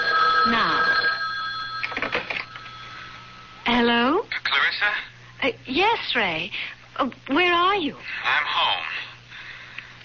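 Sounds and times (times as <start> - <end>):
telephone ringing: 0.0 - 3.7
speech: 0.4 - 0.8, 4.8 - 9.0
faint steady tone: 0.6 - 3.8.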